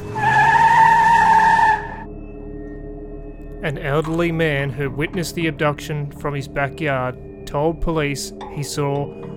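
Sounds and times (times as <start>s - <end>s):
pickup truck tires screeching while speeding off: 0.0s - 2.1s
speech: 3.6s - 9.3s.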